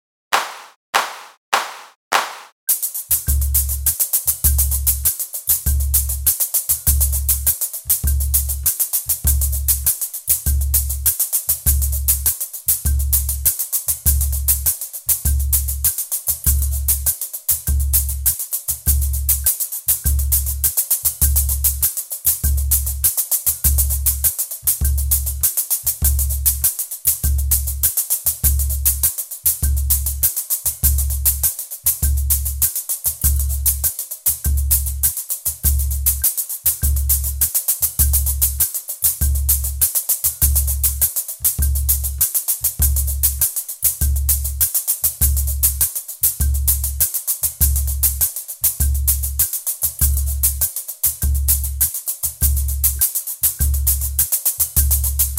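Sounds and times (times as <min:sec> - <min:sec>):
tamborim backing track: 0:00.3 - 0:55.3.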